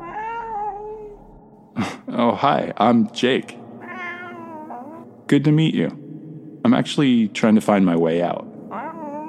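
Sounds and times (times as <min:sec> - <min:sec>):
cat meowing: 0:00.0 - 0:01.2, 0:03.8 - 0:05.0, 0:08.7 - 0:09.2
speech: 0:01.8 - 0:03.6, 0:05.3 - 0:06.0, 0:06.6 - 0:08.5.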